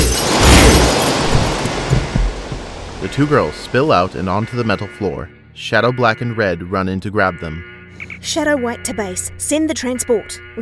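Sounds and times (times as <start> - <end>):
laser weapon firing: 0.0 - 2.0
containment tanks breaking open: 0.0 - 3.8
speech: 3.1 - 10.6.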